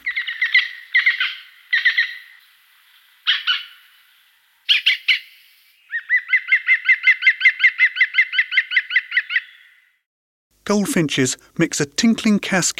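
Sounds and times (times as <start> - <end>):
green woodpecker laughing call: 0.0 - 2.2, 5.9 - 9.7
speech: 10.7 - 12.7.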